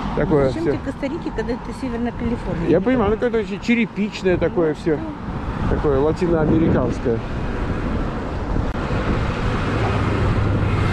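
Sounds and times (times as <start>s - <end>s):
wind buffeting the microphone on the Northern California coast: 0.0s - 10.9s
speech: 0.2s - 7.8s
ocean surf roaring on the Northern California coast: 2.5s - 10.9s.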